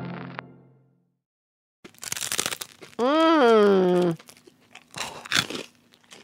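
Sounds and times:
crunchy candy bar being bitten: 0:01.9 - 0:06.2
softer chewing crackles: 0:01.9 - 0:06.2.

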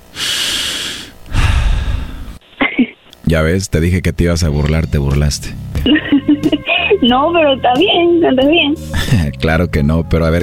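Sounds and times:
exaggerated heavy breathing imitation: 0:00.0 - 0:02.4
voiced huff: 0:00.1 - 0:02.8
speech: 0:03.3 - 0:10.4
laughter: 0:05.9 - 0:07.1.

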